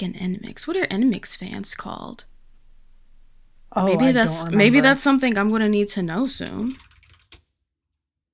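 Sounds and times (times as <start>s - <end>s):
speech: 0.0s - 2.3s, 3.7s - 6.9s
mechanical keyboard typing: 6.4s - 7.4s.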